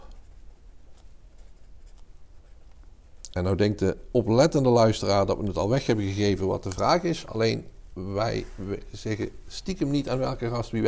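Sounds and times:
pen or pencil writing on paper: 0.0s - 2.7s
speech: 3.3s - 10.8s.

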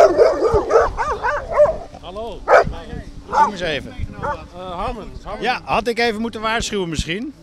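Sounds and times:
dog barking and yipping: 0.0s - 1.9s, 2.5s - 3.6s, 4.2s - 4.4s
speech: 3.5s - 7.4s.

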